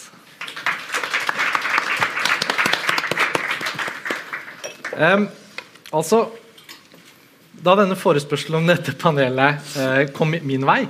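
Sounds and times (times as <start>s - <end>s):
audience applause: 0.3s - 5.2s
speech: 5.0s - 6.4s, 7.6s - 10.8s.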